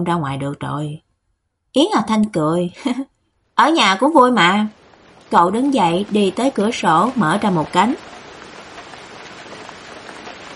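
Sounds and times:
speech: 0:00.0 - 0:01.0, 0:01.8 - 0:08.1
rain falling on banana leaves: 0:03.6 - 0:10.5.

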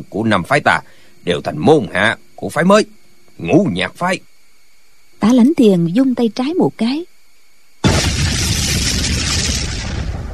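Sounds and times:
speech: 0:00.0 - 0:04.3, 0:05.2 - 0:07.1
firecrackers exploding on both sides of a mountain: 0:07.8 - 0:10.3.

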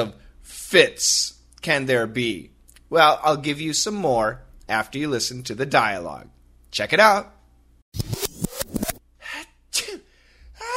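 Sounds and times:
speech: 0:00.0 - 0:08.1
person sneezing in a sneezing fit: 0:09.2 - 0:10.7.

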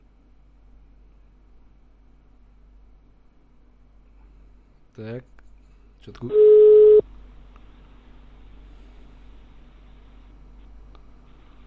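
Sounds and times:
speech: 0:05.0 - 0:05.4, 0:06.0 - 0:06.7
telephone busy-signal tone after dialing: 0:06.3 - 0:07.0.

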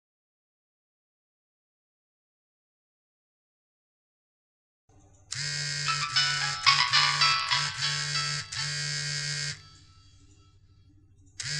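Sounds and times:
mobile phone ringtone with bright electronic melody during a recording session: 0:05.4 - 0:10.2.

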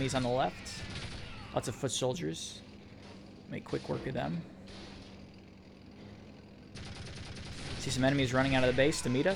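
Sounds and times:
speech: 0:00.0 - 0:00.9, 0:01.5 - 0:02.7, 0:03.5 - 0:04.8, 0:07.8 - 0:09.3
tank gunner's rapid automatic gunfire: 0:06.7 - 0:08.7.

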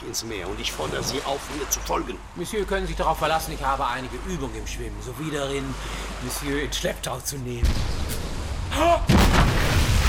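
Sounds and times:
speech: 0:00.0 - 0:08.1
heavy cannon blast from a ship at sea: 0:07.6 - 0:10.0.

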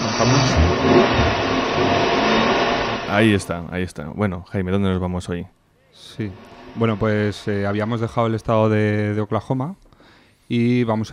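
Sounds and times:
car engine starting and revving: 0:00.0 - 0:03.4
speech: 0:00.2 - 0:02.2, 0:03.1 - 0:09.8, 0:10.5 - 0:11.1.

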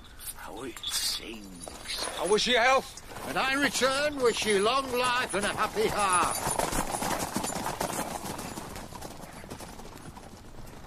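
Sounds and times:
speech: 0:00.5 - 0:06.7
large horse hooves clip-clopping as rider leaves: 0:01.5 - 0:10.8.

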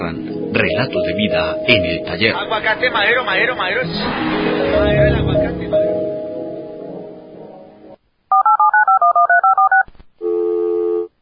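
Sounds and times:
speech: 0:00.0 - 0:05.7
telephone keypad dialing touch-tones during a phone call: 0:08.3 - 0:09.9
long steady telephone tone: 0:08.3 - 0:11.1.

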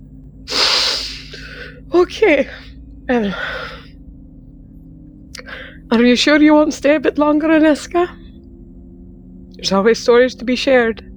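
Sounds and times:
person sniffling: 0:00.5 - 0:01.8
speech: 0:02.0 - 0:03.8, 0:05.9 - 0:08.2, 0:09.6 - 0:11.1.

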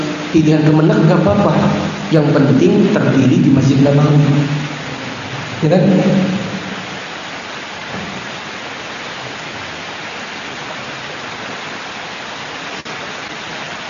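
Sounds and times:
steady rain: 0:00.0 - 0:13.8
speech: 0:00.3 - 0:04.6, 0:05.6 - 0:06.4.

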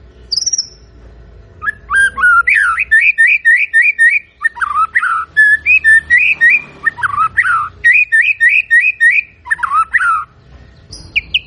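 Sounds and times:
white-rumped shama singing whistled phrases: 0:01.6 - 0:10.3.

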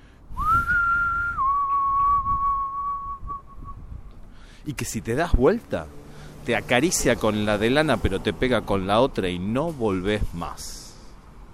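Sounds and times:
long whistled call: 0:00.4 - 0:03.8
speech: 0:04.7 - 0:10.8.

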